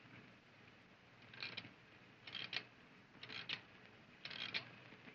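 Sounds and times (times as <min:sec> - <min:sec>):
clock ratchet clicking as it is rewound by hand: 0:01.3 - 0:01.7, 0:02.3 - 0:03.6, 0:04.3 - 0:04.7.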